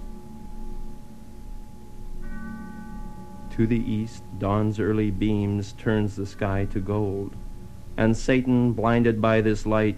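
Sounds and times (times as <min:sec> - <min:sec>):
distant church bell ringing: 0:00.0 - 0:07.7
speech: 0:03.6 - 0:07.4, 0:08.0 - 0:09.9.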